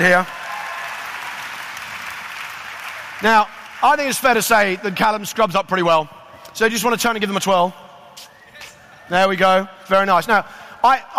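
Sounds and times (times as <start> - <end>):
speech: 0.0 - 0.4, 3.2 - 8.3, 9.1 - 11.1
audience applause: 0.0 - 4.6.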